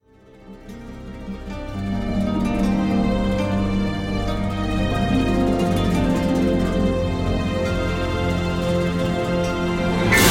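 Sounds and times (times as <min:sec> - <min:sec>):
market music intro: 0:00.8 - 0:10.2.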